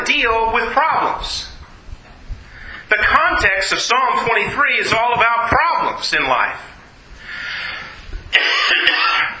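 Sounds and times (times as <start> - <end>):
speech: 0.1 - 1.5, 2.9 - 6.7, 8.3 - 9.2
person clearing throat: 8.3 - 9.3
person coughing: 8.3 - 9.3.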